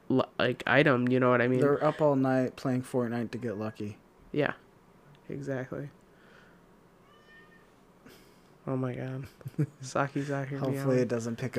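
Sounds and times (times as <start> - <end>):
low hum: 0.0 - 11.5
speech: 0.1 - 4.6, 5.3 - 6.0, 8.7 - 11.5
cat meowing to be let in: 7.0 - 7.8.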